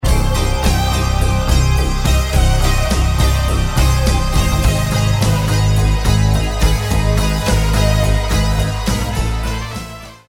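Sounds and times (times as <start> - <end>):
weird circus trumpet: 0.0 - 10.2.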